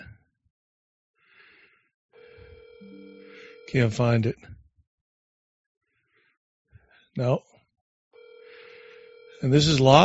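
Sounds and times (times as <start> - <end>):
telephone ringing over a phone line as a call is placed: 2.2 - 4.2, 8.2 - 10.0
speech: 3.7 - 4.6, 7.2 - 7.5, 9.4 - 10.0.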